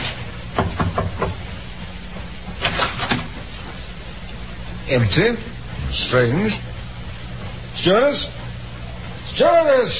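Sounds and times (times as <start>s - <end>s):
steady low hum: 0.0s - 9.9s
knocking on a cabin door: 0.6s - 1.4s
speech: 4.9s - 6.7s, 7.8s - 8.4s, 9.4s - 9.9s.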